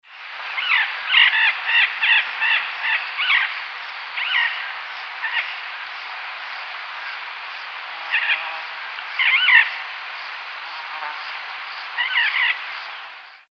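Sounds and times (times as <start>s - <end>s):
Primolius maracana calling: 0.6s - 3.6s, 4.2s - 6.1s, 8.0s - 9.9s, 11.1s - 13.0s.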